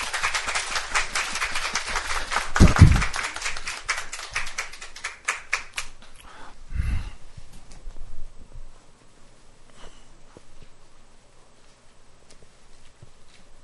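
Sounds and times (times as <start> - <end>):
church audience applauding at a baptism: 0.0 - 6.0.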